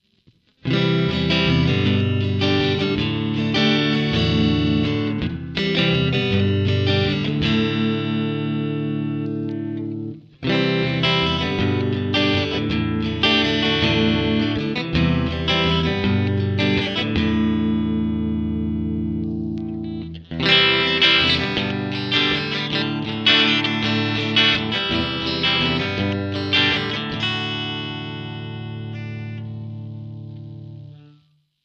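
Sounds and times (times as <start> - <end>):
clear chords: 0.6 - 31.3.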